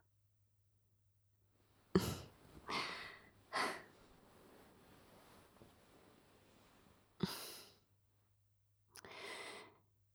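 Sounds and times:
soft breaths blown into the ear: 1.9s - 7.7s.

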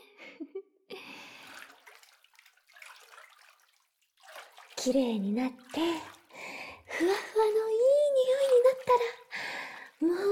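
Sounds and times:
water pouring and splashing while rinsing someone's back during a bath: 1.3s - 10.3s
speech: 4.8s - 6.2s, 7.0s - 7.9s, 8.9s - 9.2s.

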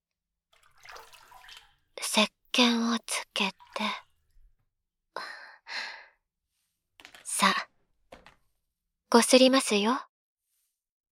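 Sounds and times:
water poured over someone in a bath to rinse them: 0.6s - 4.5s
speech: 2.2s - 3.0s, 9.2s - 10.1s.

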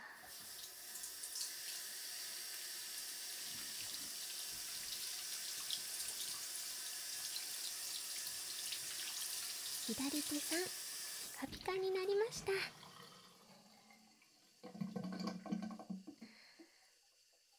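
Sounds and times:
tap water running into a sink: 0.2s - 17.5s
speech: 9.9s - 10.8s, 11.4s - 12.8s.

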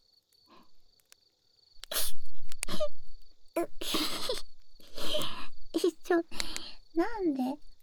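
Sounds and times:
insects chirring: 0.0s - 7.8s
person sneezing: 1.9s - 2.9s, 3.8s - 4.5s.

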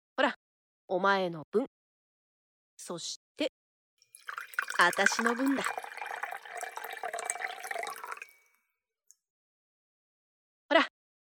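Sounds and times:
speech: 0.2s - 1.8s, 2.8s - 3.6s, 4.3s - 5.9s
red wine pouring into a glass: 4.1s - 8.5s.

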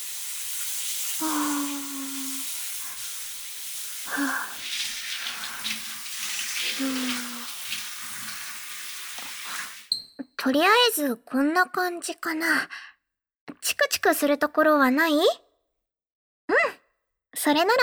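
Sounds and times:
running water rinsing cut hair: 0.0s - 10.0s
speech: 1.2s - 1.4s, 10.4s - 12.8s, 13.7s - 15.4s, 17.4s - 17.8s.

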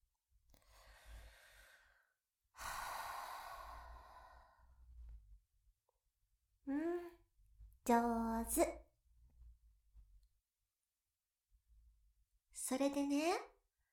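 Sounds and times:
slow breathing in and out: 0.6s - 5.2s
speech: 7.9s - 8.8s, 12.8s - 13.5s.

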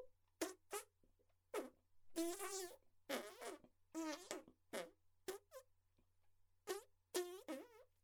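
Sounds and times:
farting: 0.4s - 0.9s, 1.5s - 5.7s, 6.6s - 7.9s.

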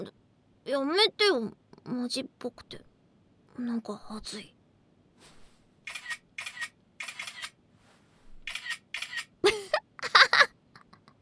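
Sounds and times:
speech: 0.0s - 2.9s, 3.6s - 4.6s
single-lens reflex camera shutter clicking: 5.9s - 7.6s, 8.5s - 9.4s.

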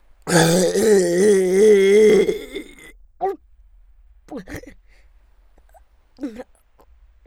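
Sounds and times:
very loud drawn-out burp: 0.3s - 2.9s
short voiced vocal sounds: 0.3s - 3.4s.

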